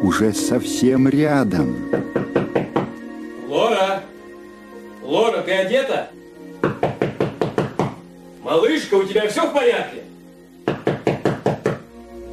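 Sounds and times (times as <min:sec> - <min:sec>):
speech: 0:00.0 - 0:02.4, 0:05.1 - 0:06.2, 0:08.5 - 0:10.0
sharp knocks on a door: 0:01.9 - 0:03.0, 0:06.6 - 0:08.0, 0:10.6 - 0:11.8.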